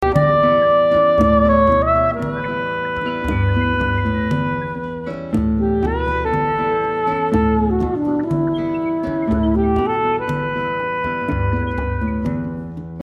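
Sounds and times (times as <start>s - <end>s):
saxophone: 0.0s - 13.0s.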